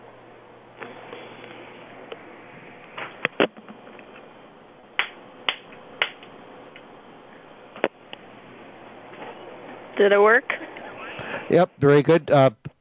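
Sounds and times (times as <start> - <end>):
hand claps as a calibration test: 5.0 - 6.3
speech: 10.0 - 10.6, 11.5 - 12.7.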